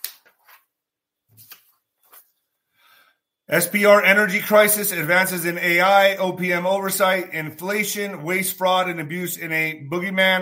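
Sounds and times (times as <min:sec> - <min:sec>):
paper rustling and shuffling: 0:00.0 - 0:02.5
speech: 0:03.5 - 0:10.3.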